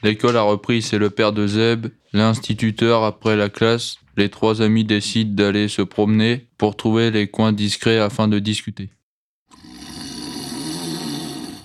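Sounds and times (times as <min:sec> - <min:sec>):
speech: 0:00.0 - 0:09.0
person snoring: 0:09.5 - 0:11.6.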